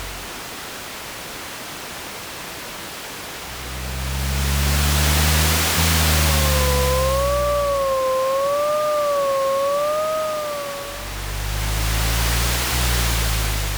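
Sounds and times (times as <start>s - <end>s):
distant city night ambience: 3.4s - 13.7s.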